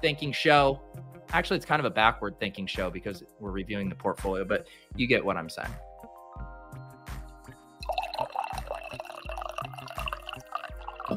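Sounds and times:
speech: 0.0 - 5.9
coffee pouring into a cup: 7.8 - 11.1.

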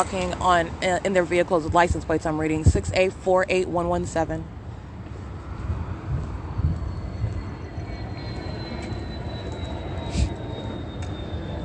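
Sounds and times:
speech: 0.0 - 4.6
airplane droning overhead near an airport: 0.0 - 11.6
high whine gliding downward in pitch: 4.8 - 11.6.

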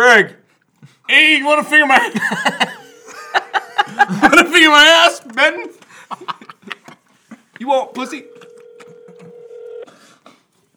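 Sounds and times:
speech: 0.1 - 0.4, 1.1 - 6.5, 7.6 - 8.4
laughter: 1.8 - 5.0, 5.8 - 7.6
outgoing phone call electronic ringback tone: 8.0 - 9.9.

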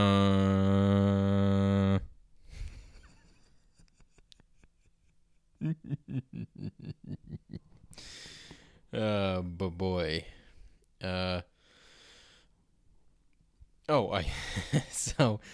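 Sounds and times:
voice imitating a loud steady buzzing drone: 0.0 - 2.1
laughter: 2.9 - 7.6
speech: 9.0 - 10.3, 14.1 - 15.5.

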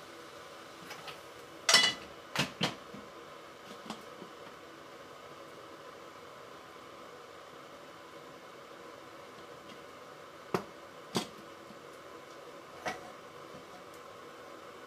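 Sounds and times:
steady fan-like hum: 0.0 - 14.8
utensils or dishes clinking and knocking in a kitchen: 1.7 - 2.1.

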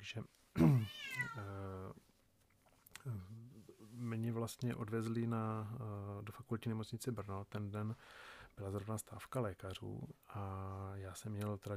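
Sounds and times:
speech: 0.1 - 2.1, 3.0 - 11.7
cat outdoors meowing to be let back home: 0.8 - 1.5.

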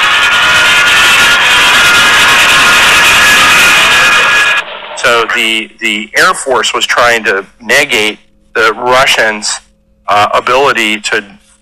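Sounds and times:
F-102 Delta Dagger fighter jets of the US Air Defense Command scrambling, jet engine roar: 0.0 - 6.9
speech: 5.3 - 11.4.

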